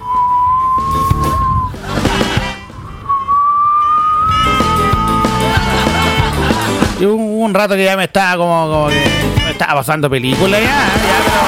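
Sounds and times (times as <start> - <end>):
person imitating wind whistling through a house: 0.0 - 5.8
laughter: 1.7 - 2.7, 4.5 - 7.0, 10.5 - 11.4
speech: 7.0 - 11.4.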